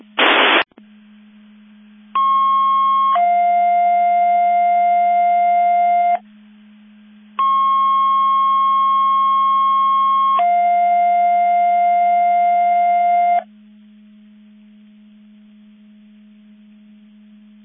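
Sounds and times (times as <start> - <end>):
brief noise burst over a radio channel: 0.0 - 0.7
steady low hum: 0.0 - 17.6.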